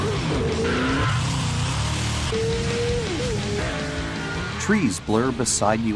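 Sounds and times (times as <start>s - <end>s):
video game sports car tires squealing through corners: 0.0s - 4.8s
video game sports car engines roaring: 0.0s - 5.9s
speech: 4.7s - 5.9s.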